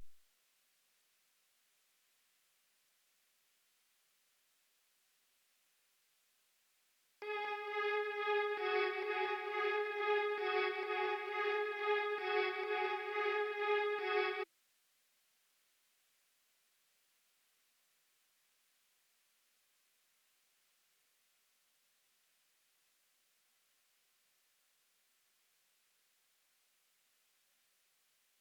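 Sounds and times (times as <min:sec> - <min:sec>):
trap string melody loop in C sharp minor: 0:07.2 - 0:14.4.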